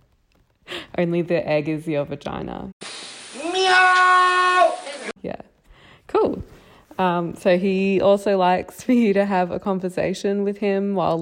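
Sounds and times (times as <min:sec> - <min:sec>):
speech: 0:01.0 - 0:02.7, 0:05.2 - 0:05.5, 0:06.1 - 0:11.2
human voice imitating a drawn-out cat meow: 0:03.4 - 0:04.8.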